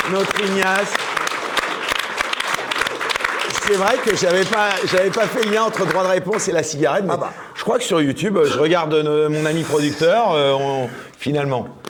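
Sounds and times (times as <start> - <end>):
audience applauding: 0.0 - 6.8
speech: 0.1 - 1.2, 3.7 - 11.8.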